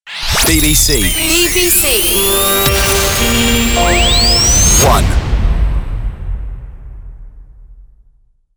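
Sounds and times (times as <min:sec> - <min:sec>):
station ID jingle: 0:00.1 - 0:05.4.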